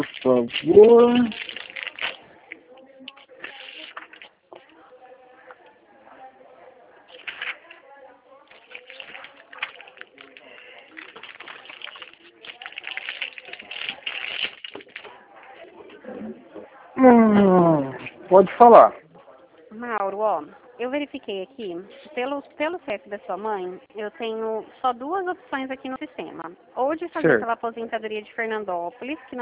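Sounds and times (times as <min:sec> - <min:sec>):
paper rustling and shuffling: 0:00.0 - 0:02.3, 0:03.1 - 0:04.3, 0:07.1 - 0:07.8, 0:08.5 - 0:15.2
speech: 0:00.2 - 0:01.4, 0:18.3 - 0:19.0, 0:19.8 - 0:29.4.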